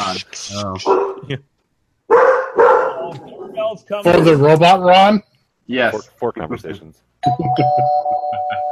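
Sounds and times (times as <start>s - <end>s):
speech: 0.1s - 1.5s, 3.1s - 8.5s
dog barking: 0.8s - 1.3s, 2.1s - 3.5s.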